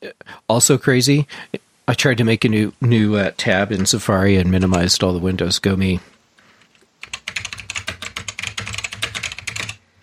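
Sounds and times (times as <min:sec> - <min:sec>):
speech: 0:00.5 - 0:06.1
rapid typing on a computer keyboard during a search: 0:06.6 - 0:09.8.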